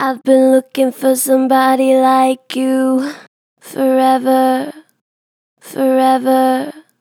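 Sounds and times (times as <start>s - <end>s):
gentle vocals with natural vibrato: 0.0s - 5.0s, 5.6s - 6.9s.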